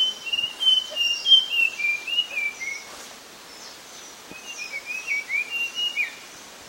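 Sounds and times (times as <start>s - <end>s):
pale blue flycatcher whistled song: 0.0s - 3.0s, 4.3s - 6.2s
faint background hiss: 0.0s - 6.6s.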